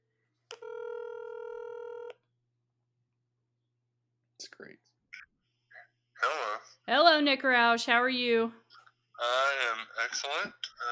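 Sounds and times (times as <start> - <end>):
steady electronic phone tone as a call is placed: 0.5 - 2.2
speech: 6.3 - 8.6, 10.1 - 10.6.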